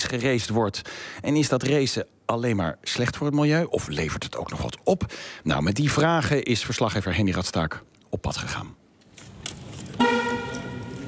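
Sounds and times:
hiss: 0.0 - 11.0
speech: 0.1 - 8.8
electric car horn honking: 10.0 - 11.0.

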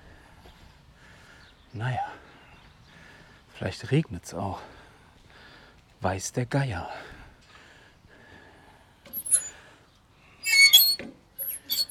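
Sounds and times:
speech: 1.8 - 2.2, 3.6 - 4.8, 6.0 - 7.1
squeaking part that needs oil: 9.2 - 9.5, 10.4 - 11.8.

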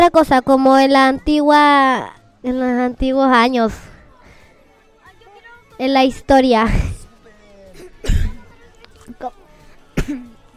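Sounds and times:
speech: 0.0 - 3.9, 5.8 - 7.0, 9.1 - 9.4
person coughing: 7.8 - 8.4, 10.0 - 10.4
throat clearing: 7.8 - 8.5, 10.0 - 10.4.

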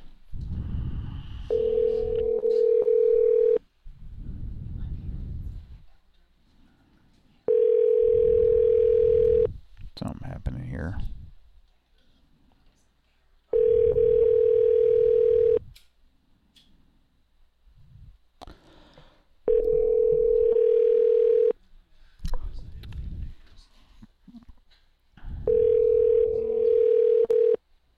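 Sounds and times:
telephone ringing tone on the line: 1.4 - 3.6, 7.5 - 9.5, 13.5 - 15.6, 19.5 - 21.5, 25.5 - 27.6
person speaking: 10.0 - 11.2, 25.5 - 27.5.

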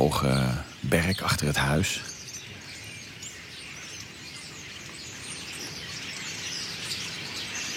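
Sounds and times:
speech: 0.0 - 2.1
large flock of starlings twittering in the evening near a house: 0.0 - 7.7.

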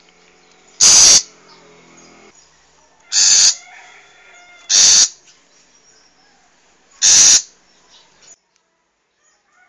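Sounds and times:
wild long-tailed shrike calling with grating bursts: 0.5 - 2.3, 3.1 - 5.2, 6.4 - 7.6.

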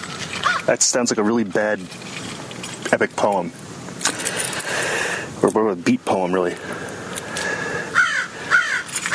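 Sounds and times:
noise: 0.0 - 9.1
crows cawing outside a house: 0.4 - 0.7, 7.4 - 9.1
speech: 0.7 - 2.2, 2.9 - 4.2, 5.4 - 6.9.

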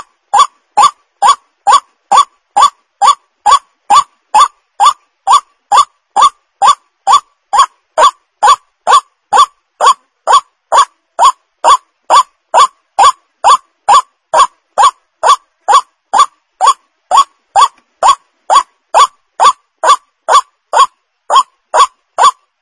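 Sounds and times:
white-breasted waterhen lure call croaking: 0.0 - 22.6.

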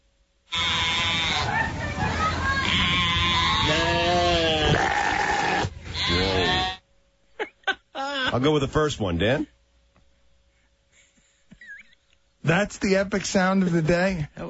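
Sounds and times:
sheep bleating, one of them sick: 0.5 - 6.8
speech: 8.4 - 9.6, 12.5 - 14.4.

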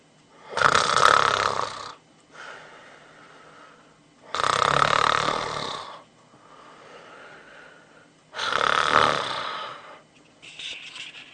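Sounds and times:
man snoring in his sleep: 0.4 - 2.0, 4.2 - 6.0, 8.3 - 10.0.

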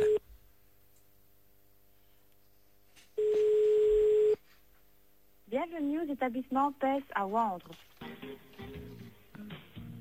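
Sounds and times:
phone line ringing tone while a call is placed to a car dealership: 0.0 - 0.2, 3.2 - 4.4
speech: 5.6 - 8.4.

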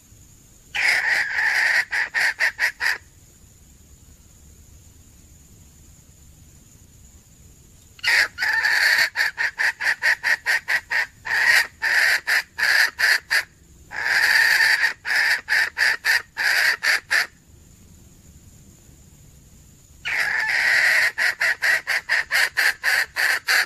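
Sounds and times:
faint steady whine: 0.0 - 23.6
female junglefowl clucking: 0.8 - 3.1, 8.0 - 17.4, 20.0 - 23.6.

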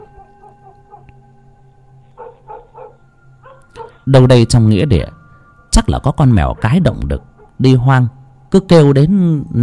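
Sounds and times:
dog barking in a village at night: 0.0 - 1.2, 2.1 - 4.1, 6.4 - 7.6
speech: 4.0 - 5.2, 5.8 - 9.6.

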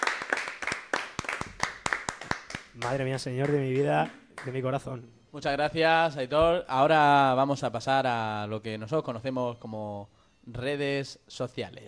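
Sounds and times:
studio audience clapping on a television programme: 0.0 - 4.6
speech: 2.8 - 11.8.

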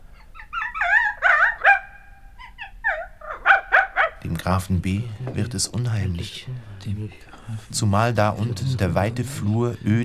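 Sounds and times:
frightened dog whining and yelping while fleeing down a staircase: 0.1 - 4.2
speech: 4.5 - 10.0.

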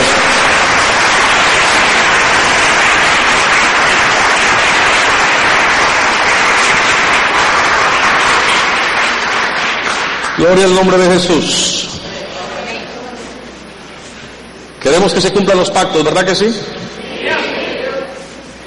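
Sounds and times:
congregation applauding during an evangelical church service: 0.0 - 11.9
speech: 10.4 - 11.7, 14.9 - 16.8.

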